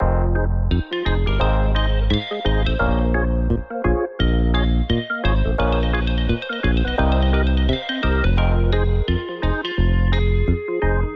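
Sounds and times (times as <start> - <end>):
melody loop in F minor: 0.0 - 11.1.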